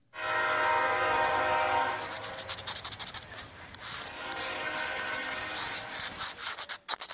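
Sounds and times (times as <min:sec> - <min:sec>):
freight train roaring past: 0:00.1 - 0:02.4, 0:03.4 - 0:06.4.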